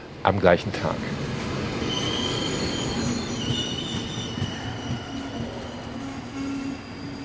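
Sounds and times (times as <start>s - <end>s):
train rolling along rails: 0.0s - 7.2s
speech: 0.2s - 1.3s
high metallic train wheel squeals: 1.8s - 7.2s.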